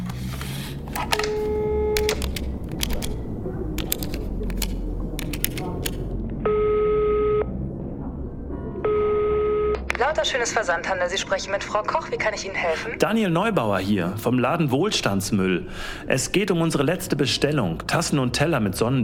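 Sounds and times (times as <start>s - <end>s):
constant low hum: 0.0s - 19.0s
phone keypad clicks from dialing a number: 0.9s - 3.2s, 3.8s - 6.1s
steady electronic dial tones: 1.0s - 3.1s, 6.4s - 7.5s, 8.8s - 10.0s
speech: 10.2s - 19.0s.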